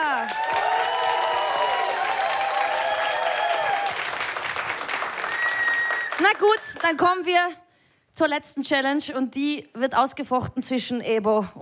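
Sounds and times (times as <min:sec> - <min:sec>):
audience cheers: 0:00.0 - 0:06.8
audience applause: 0:00.0 - 0:07.0
audience whistles: 0:05.2 - 0:06.2
speech: 0:06.2 - 0:07.6, 0:08.2 - 0:11.6.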